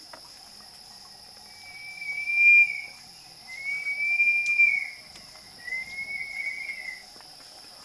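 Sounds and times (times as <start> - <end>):
crested partridge: 1.5 - 7.1.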